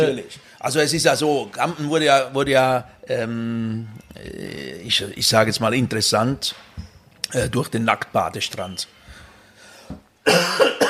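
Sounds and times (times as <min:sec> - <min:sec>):
speech: 0:00.0 - 0:09.0, 0:09.9 - 0:10.8
person coughing harshly: 0:10.2 - 0:10.8.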